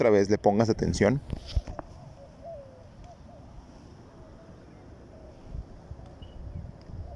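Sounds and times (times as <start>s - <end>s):
speech: 0.0s - 1.6s
steady low rumble of wind in an urban park: 0.4s - 7.1s
faint bird chirps in an urban park: 1.6s - 7.1s.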